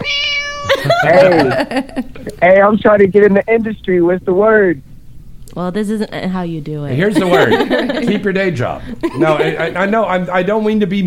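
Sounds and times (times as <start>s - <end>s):
cat meowing: 0.0s - 0.8s
laughter: 0.7s - 2.4s, 7.1s - 10.2s
speech: 0.8s - 4.9s, 5.5s - 11.0s.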